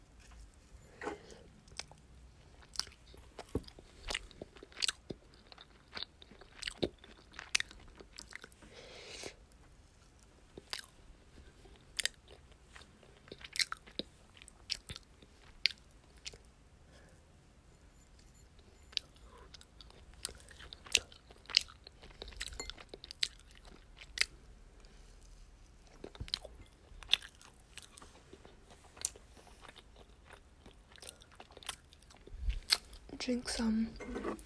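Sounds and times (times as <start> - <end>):
biting and chewing food: 0.0 - 8.6, 10.2 - 16.5, 18.9 - 24.5, 25.2 - 33.1
speech: 33.3 - 34.3.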